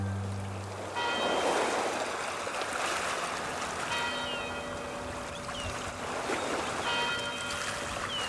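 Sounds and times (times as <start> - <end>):
waves lapping: 0.1 - 8.2
buoy bell ringing at a yacht club in Detroit: 1.0 - 1.6, 3.4 - 5.8, 6.8 - 8.2.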